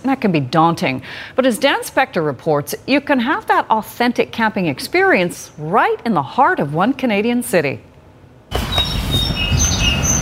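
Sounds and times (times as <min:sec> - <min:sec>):
speech: 0:00.1 - 0:07.9, 0:08.5 - 0:09.5
birds chirping outdoors at a campsite in a Canadian city: 0:08.5 - 0:10.1
short high whistled bird calls: 0:08.5 - 0:10.1.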